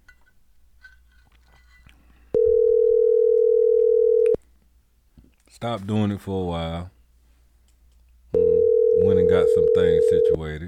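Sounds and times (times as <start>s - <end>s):
low hum: 0.0s - 10.6s
phone ringback tone during outgoing call: 2.3s - 4.4s, 8.4s - 10.4s
speech: 5.6s - 7.0s, 9.1s - 10.6s.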